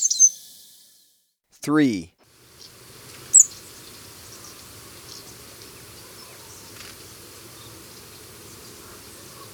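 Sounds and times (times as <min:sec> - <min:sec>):
speech: 0:01.7 - 0:02.1
scrub tanager chattering in Ecuador: 0:02.6 - 0:09.5.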